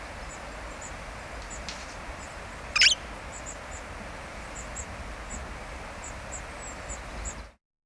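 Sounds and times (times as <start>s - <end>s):
background hiss: 0.0s - 7.6s
Red-fronted parrot Poicephalus gulielmi giving a sharp harsh screech: 2.8s - 3.0s.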